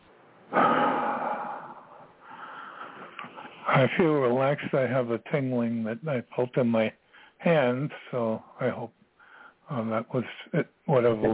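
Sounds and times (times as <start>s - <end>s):
big breath in through the nose and out through the mouth: 0.5s - 3.6s
speech: 3.8s - 9.0s, 9.7s - 11.3s.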